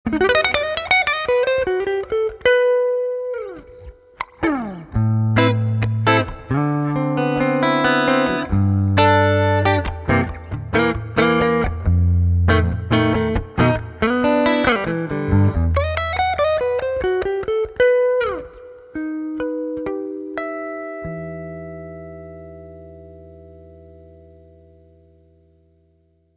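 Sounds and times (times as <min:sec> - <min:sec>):
Gibson ES-335 electric guitar neck pickup through a Roland JC-120 amplifier: 0:00.1 - 0:25.9.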